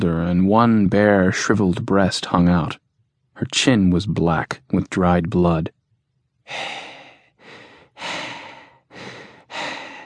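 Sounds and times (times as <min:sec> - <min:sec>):
speech: 0:00.0 - 0:02.8, 0:03.4 - 0:05.8, 0:06.5 - 0:06.9
heavy ragged breathing: 0:06.5 - 0:10.0.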